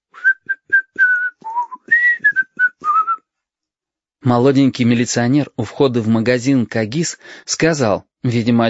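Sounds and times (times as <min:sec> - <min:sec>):
boy whistling a tune loudly but unskillfully: 0:00.1 - 0:03.2
speech: 0:04.2 - 0:08.6.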